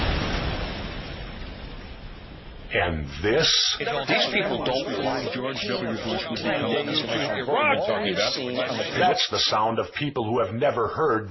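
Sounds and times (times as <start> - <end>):
car bomb exploding with broadband roar and heavy low rumble: 0.0 - 2.7
speech: 2.7 - 11.2
laughter: 3.8 - 9.5.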